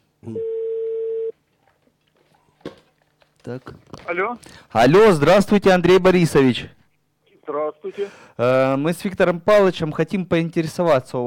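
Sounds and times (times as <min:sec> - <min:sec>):
faint low hum: 0:00.0 - 0:10.2
speech: 0:00.2 - 0:00.5, 0:03.4 - 0:06.8, 0:07.8 - 0:11.2
telephone tone as a call is dialed: 0:00.3 - 0:01.3.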